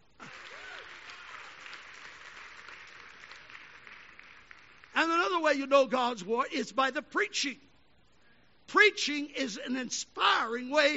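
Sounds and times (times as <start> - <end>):
congregation clapping hands: 0.2 - 5.0
speech: 5.0 - 7.6, 8.7 - 10.9.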